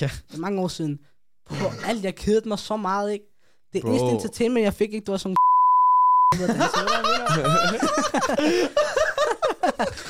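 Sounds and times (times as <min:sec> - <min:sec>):
speech: 0:00.0 - 0:05.4, 0:06.4 - 0:09.0, 0:09.8 - 0:10.0
animated voices: 0:03.8 - 0:04.4
high-pitched censor bleep: 0:05.4 - 0:06.3
loud laughter: 0:06.3 - 0:10.0.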